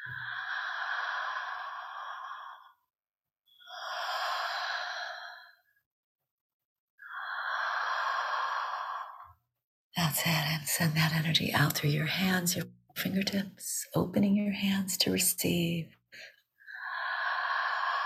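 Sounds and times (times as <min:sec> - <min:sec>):
slow deep breathing: 0:00.0 - 0:02.9, 0:03.5 - 0:05.8, 0:07.0 - 0:09.4, 0:16.1 - 0:18.0
speech: 0:10.2 - 0:16.3.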